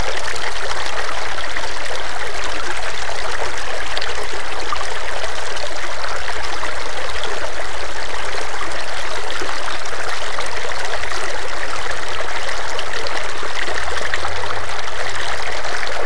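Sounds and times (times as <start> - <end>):
stream: 0.0 - 16.0.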